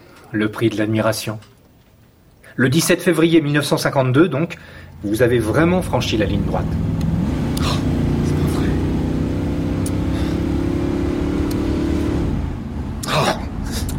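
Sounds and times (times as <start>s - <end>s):
speech: 0.3s - 1.5s, 2.6s - 6.9s
car driving fast with droning engine hum: 4.8s - 13.9s.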